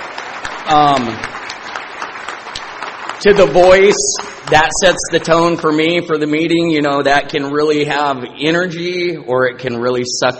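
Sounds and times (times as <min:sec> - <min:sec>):
room full of people applauding: 0:00.0 - 0:05.8
speech: 0:00.7 - 0:01.4, 0:03.2 - 0:10.3.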